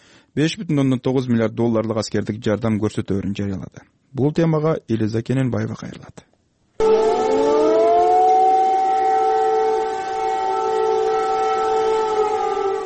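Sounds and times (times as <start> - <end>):
speech: 0.4 - 6.9
air raid sirens in Kyiv warning of a missile threat: 6.8 - 12.8.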